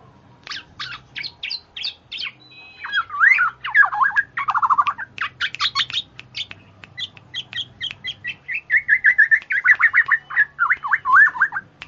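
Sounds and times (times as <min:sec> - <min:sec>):
female black-naped oriole chattering song: 0:00.4 - 0:11.8.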